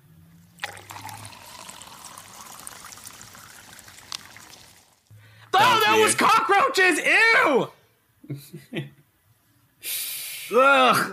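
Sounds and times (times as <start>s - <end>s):
water pouring: 0.3s - 5.1s
speech: 5.6s - 8.4s, 10.5s - 11.1s.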